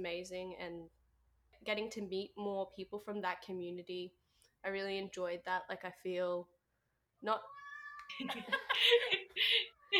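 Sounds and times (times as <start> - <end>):
speech: 0.0 - 1.0, 1.6 - 6.5, 7.2 - 9.6
cat meowing with a whiny baby-like cry: 7.4 - 8.1.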